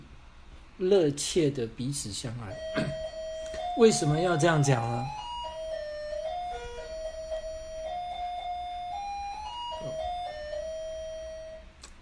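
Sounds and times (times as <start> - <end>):
speech: 0.8 - 3.0, 3.8 - 5.2
melodic electronic doorbell chime of a home: 2.5 - 11.7.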